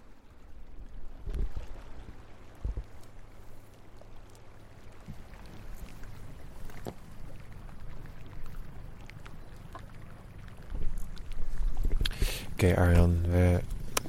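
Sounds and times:
water wash lapping against a boat hull: 0.0 - 14.0
knocks and splashes: 1.0 - 13.0
speech: 12.6 - 13.6.

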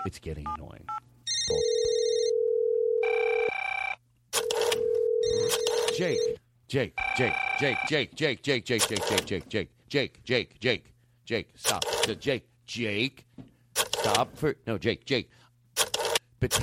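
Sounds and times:
speech: 0.0 - 1.8, 6.0 - 13.3, 14.0 - 15.4, 16.4 - 16.6
telephone ringing sound effect: 1.3 - 6.4.

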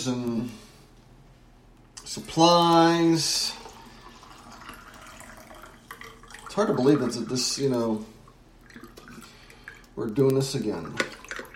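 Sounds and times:
speech: 0.0 - 0.7, 2.1 - 3.6, 6.6 - 8.1, 10.0 - 11.2
coffee being poured from a pot into a cup: 2.0 - 8.0, 8.6 - 11.5.

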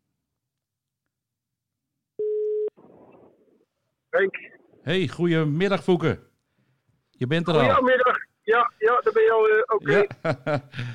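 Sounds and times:
telephone ringback tone on an outgoing call: 2.2 - 2.7
speech: 4.1 - 6.3, 7.2 - 10.9
laughter: 9.8 - 10.9.

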